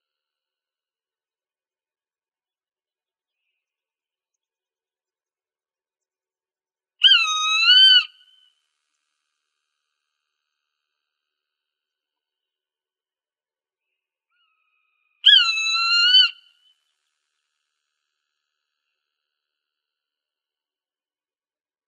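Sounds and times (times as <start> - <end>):
Swainson's hawk screaming in Arizona, United States: 7.0 - 8.1, 15.3 - 16.4.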